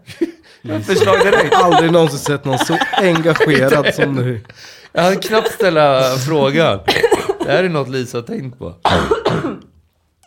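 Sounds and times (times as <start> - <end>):
laughter: 0.1 - 7.6
speech: 0.1 - 9.6
forceful cough with a throaty rasp: 6.9 - 7.5, 8.8 - 9.8.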